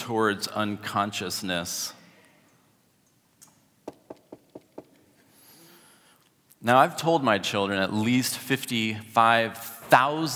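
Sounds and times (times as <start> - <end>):
speech: 0.0 - 2.0, 6.6 - 10.3
faint hiss: 0.0 - 10.3
sharp knocks on a door: 3.9 - 4.9.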